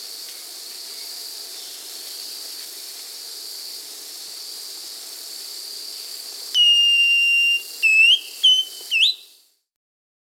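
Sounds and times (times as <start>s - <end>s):
Thrush-like schiffornis whistling song in South America: 6.6s - 9.4s.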